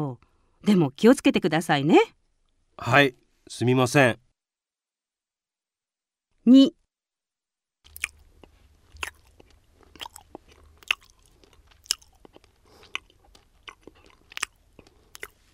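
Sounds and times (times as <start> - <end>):
speech: 0.0 - 2.2, 2.8 - 4.2, 6.4 - 6.8
chewing gum in the mouth: 7.9 - 15.5.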